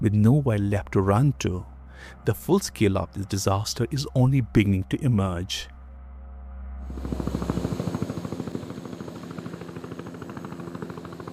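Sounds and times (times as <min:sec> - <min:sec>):
speech: 0:00.0 - 0:05.7
military helicopter heavy engine drone: 0:06.8 - 0:10.2
military helicopter rotor thumping: 0:06.9 - 0:11.3.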